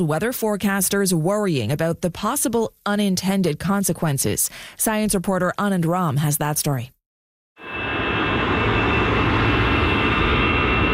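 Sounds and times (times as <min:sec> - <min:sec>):
speech: 0:00.0 - 0:07.0
aircraft taking off at a busy Paris airport: 0:07.6 - 0:10.9.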